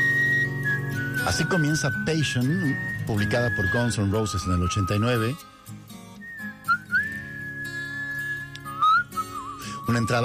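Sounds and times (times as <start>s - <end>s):
soft instrumental backing of a rock song: 0.0s - 10.2s
whistled melody opening a rock song: 0.0s - 10.2s
speech: 1.2s - 5.5s, 10.0s - 10.2s.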